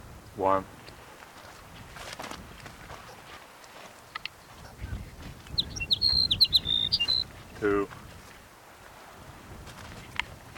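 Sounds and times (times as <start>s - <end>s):
speech: 0.4s - 0.8s, 7.6s - 8.0s
soft clicks: 3.6s - 4.4s
sage sparrow song: 4.0s - 7.8s.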